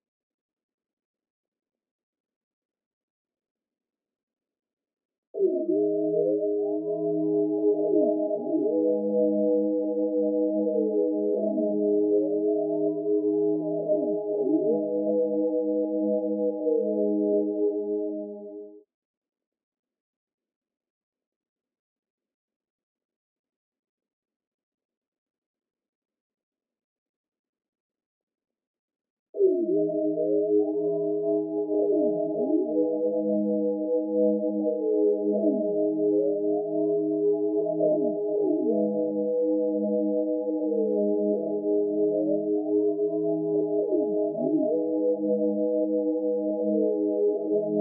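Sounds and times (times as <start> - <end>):
160 BPM G sharp minor synth pad melody loop: 5.6 - 18.6, 29.5 - 47.7.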